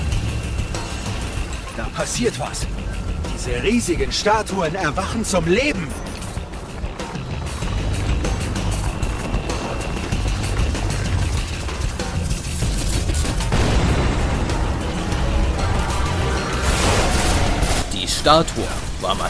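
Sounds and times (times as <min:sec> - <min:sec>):
dense rumbling roar: 0:00.0 - 0:12.2, 0:13.5 - 0:19.2
speech: 0:01.8 - 0:06.1, 0:18.3 - 0:19.2
rapid bursts of gunfire at a massive statue: 0:10.8 - 0:14.6.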